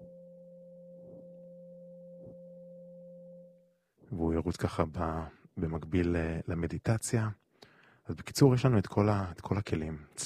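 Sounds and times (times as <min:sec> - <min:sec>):
528 Hz Solfeggio pure sine tone: 0:00.0 - 0:04.0
speech: 0:04.1 - 0:07.4, 0:08.1 - 0:10.2.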